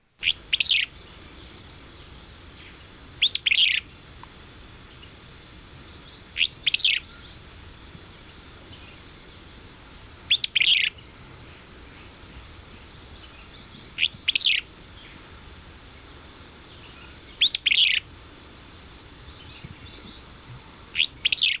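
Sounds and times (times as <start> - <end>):
high insect drone: 0.0 - 21.5
willow flycatcher singing along the Colorado River in the Grand Canyon: 0.2 - 4.1, 6.0 - 9.3, 10.2 - 18.2, 20.9 - 21.5.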